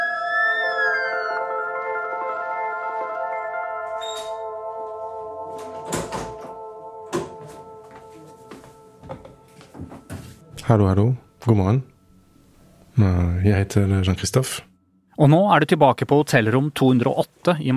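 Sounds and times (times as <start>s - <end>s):
emergency vehicle siren: 0.0s - 10.3s
speech: 10.7s - 11.9s, 13.0s - 17.7s.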